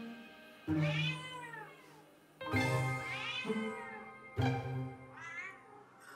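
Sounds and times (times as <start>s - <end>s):
cat meowing inside transport box on the way to the vet: 0.8s - 2.1s, 2.9s - 4.2s, 5.1s - 6.1s.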